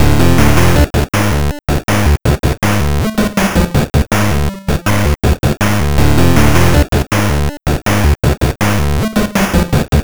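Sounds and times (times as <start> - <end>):
8-bit boss cutscene game music: 0.0 - 10.0.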